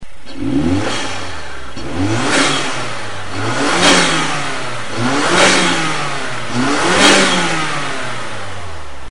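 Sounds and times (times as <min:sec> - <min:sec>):
Mazda8 turbo intake: 0:00.1 - 0:09.0.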